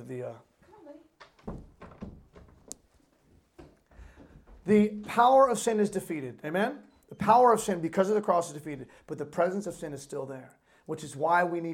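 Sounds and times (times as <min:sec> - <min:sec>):
speech: 0:00.0 - 0:01.6, 0:04.7 - 0:11.7
locked door rattling against its latch: 0:01.2 - 0:02.7.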